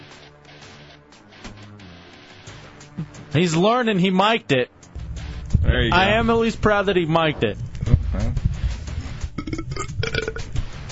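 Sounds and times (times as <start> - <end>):
speech: 3.0 - 4.8, 5.7 - 7.6
person burping: 7.8 - 8.4, 9.4 - 10.5.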